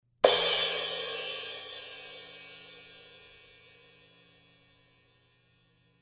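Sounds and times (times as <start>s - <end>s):
medium thin crash cymbal: 0.2s - 5.0s.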